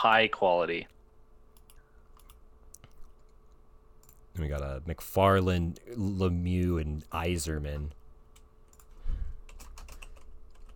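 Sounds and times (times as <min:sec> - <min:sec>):
speech: 0:00.0 - 0:01.0, 0:04.4 - 0:08.0
typing on a computer keyboard: 0:09.5 - 0:10.7.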